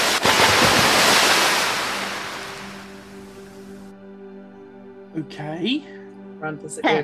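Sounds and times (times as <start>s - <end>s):
shallow waves washing and lapping at a seafront: 0.0s - 3.2s
sharp splashes of shallow sea water: 0.0s - 3.5s
speech: 5.2s - 7.0s.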